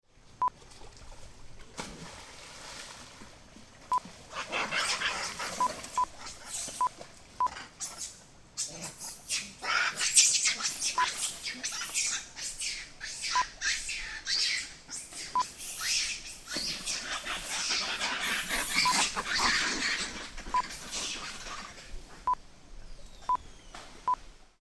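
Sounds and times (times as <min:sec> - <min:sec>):
monkeys swimming: 0:00.3 - 0:22.4
monkeys fighting: 0:04.3 - 0:21.9.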